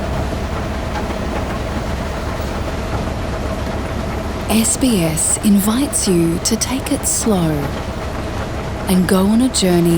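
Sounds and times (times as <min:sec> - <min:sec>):
long-distance passenger train running on rails: 0:00.0 - 0:09.9
speech: 0:04.5 - 0:08.0, 0:08.9 - 0:09.9.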